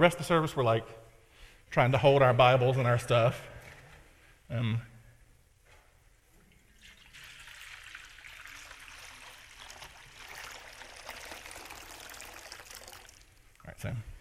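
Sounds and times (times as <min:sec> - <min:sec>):
speech: 0:00.0 - 0:01.1, 0:01.7 - 0:03.5, 0:04.5 - 0:04.9, 0:13.8 - 0:14.1
warm water pouring into a basin for washing hands: 0:06.5 - 0:13.4.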